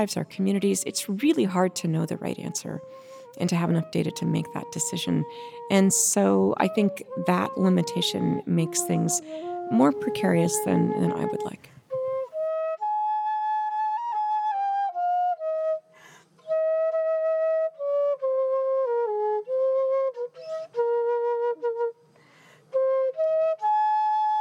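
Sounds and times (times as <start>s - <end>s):
speech: 0.0s - 11.8s
flute played aboard the International Space Station: 0.6s - 24.3s
flute player's breaths between phrases: 5.2s - 5.8s, 9.2s - 9.6s.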